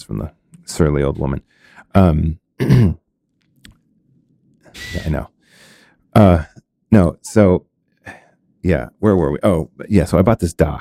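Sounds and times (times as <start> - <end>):
speech: 0.1 - 3.0, 4.8 - 5.3, 6.2 - 10.8
throat-clearing coughs: 2.6 - 3.0.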